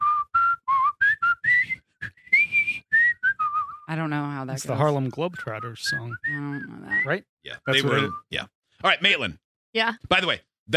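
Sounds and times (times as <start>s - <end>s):
person whistling a short bouncy melody: 0.0s - 3.9s, 5.3s - 8.4s
speech: 3.9s - 10.7s.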